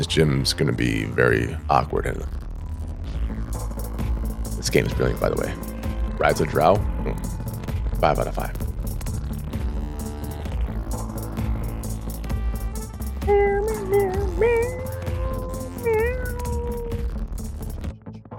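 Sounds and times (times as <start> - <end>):
speech: 0.0 - 2.4, 4.6 - 7.4, 8.0 - 8.6
steady music: 0.0 - 18.3
cat meowing in drawn-out wavering cries: 13.2 - 17.1.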